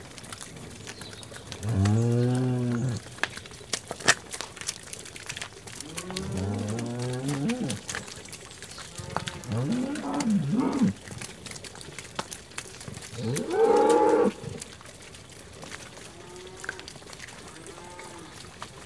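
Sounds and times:
cow hooves squelching and shuffling in mud: 0:00.0 - 0:18.8
cows mooing: 0:01.6 - 0:03.2, 0:05.7 - 0:08.0, 0:08.8 - 0:11.2, 0:13.1 - 0:14.6, 0:16.0 - 0:18.4.

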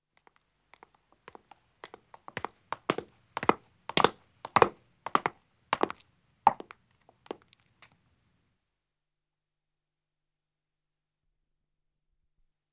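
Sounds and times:
echoing footsteps descending stone stairs: 0:00.2 - 0:07.6.

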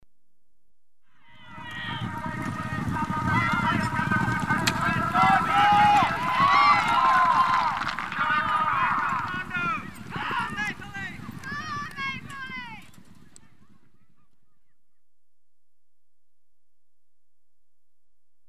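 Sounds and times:
goal scored in polo match: 0:01.3 - 0:12.0.

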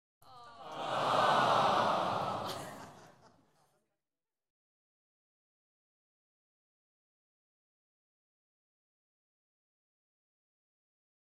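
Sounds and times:
light entertainment audience giving a sympathetic aaah: 0:00.2 - 0:03.1
laughter: 0:00.3 - 0:03.9.

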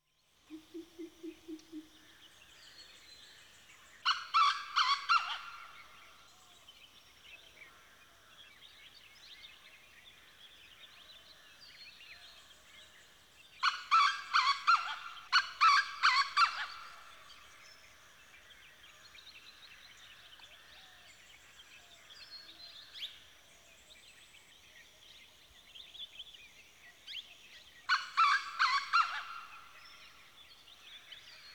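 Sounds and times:
early morning birds in India Pakistan Nepal: 0:00.5 - 0:31.5.

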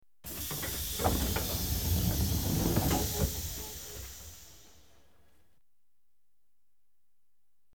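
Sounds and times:
distant London Underground trains: 0:00.3 - 0:05.1.

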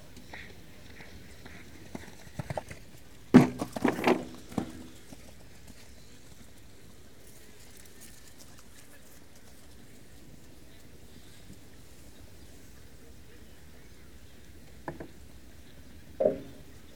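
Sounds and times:
show jumping horse jumping: 0:00.2 - 0:06.6, 0:16.2 - 0:16.9
show jumping fence knocked down by horse: 0:03.3 - 0:04.9.

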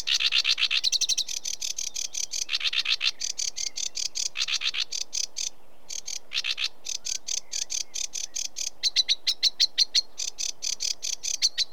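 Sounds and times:
sedge warbler singing in Britain: 0:00.0 - 0:11.7.

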